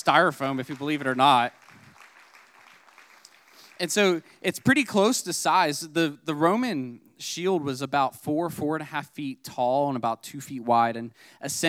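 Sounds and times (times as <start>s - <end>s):
speech: 0.0s - 1.6s, 3.8s - 11.6s
audience applause: 0.0s - 4.8s.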